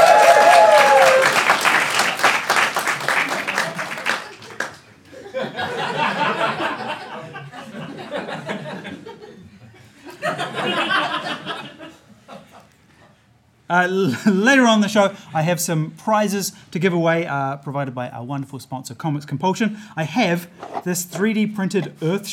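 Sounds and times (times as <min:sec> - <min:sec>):
audience cheering: 0:00.0 - 0:04.5
audience applause: 0:00.0 - 0:04.9
audience laughter: 0:04.1 - 0:13.1
speech: 0:13.8 - 0:22.3.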